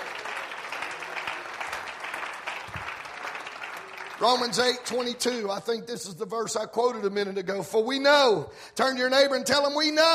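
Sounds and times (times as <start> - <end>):
crowd of people applauding: 0.0 - 5.5
speech: 4.2 - 10.1.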